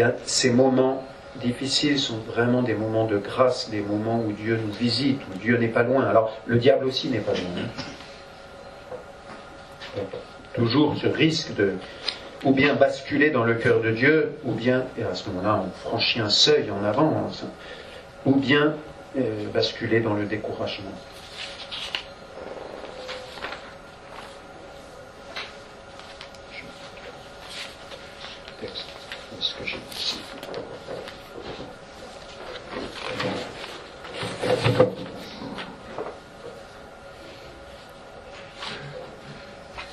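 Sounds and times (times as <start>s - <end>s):
speech: 0.0s - 8.0s, 10.0s - 21.1s
papers rustling and shuffling: 21.1s - 24.5s, 25.3s - 36.6s.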